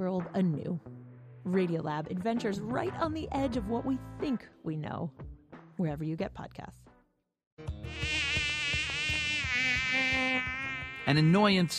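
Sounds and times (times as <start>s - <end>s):
speech: 0.0s - 6.8s, 7.6s - 8.3s, 11.1s - 11.7s
mosquito whining: 7.8s - 11.7s.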